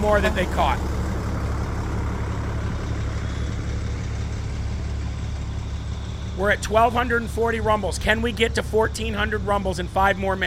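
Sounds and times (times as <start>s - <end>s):
speech: 0.0s - 0.9s, 6.4s - 10.4s
heavy bus engines idling: 0.0s - 10.4s.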